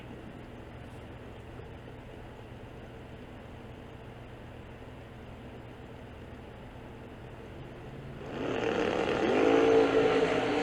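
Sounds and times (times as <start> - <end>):
race car engines roaring as they launch down the racetrack: 8.2 - 10.6.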